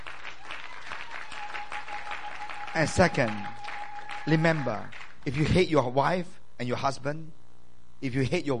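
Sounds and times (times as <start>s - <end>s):
audience clapping hands: 0.0s - 5.6s
speech: 2.8s - 3.6s, 4.2s - 7.4s, 8.0s - 8.5s.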